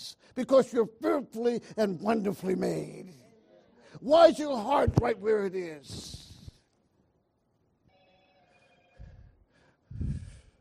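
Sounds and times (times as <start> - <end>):
speech: 0.3 - 3.2, 3.9 - 6.2
electronic cell phone ringtone: 7.9 - 9.1.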